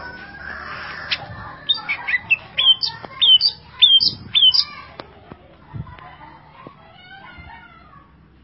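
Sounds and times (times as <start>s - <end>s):
champion greater green leafbird song: 1.7s - 4.7s.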